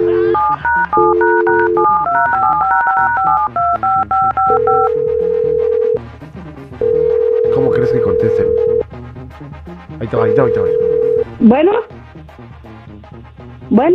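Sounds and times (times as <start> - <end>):
touch-tone telephone keypad dialing tones: 0.0 - 6.0, 6.8 - 8.8
speech: 9.5 - 13.9.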